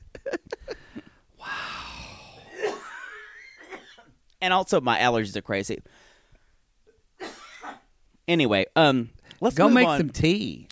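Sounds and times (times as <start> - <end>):
person coughing from a strained voice: 2.4 - 4.1, 7.2 - 7.9
speech: 4.4 - 6.0, 8.3 - 10.7.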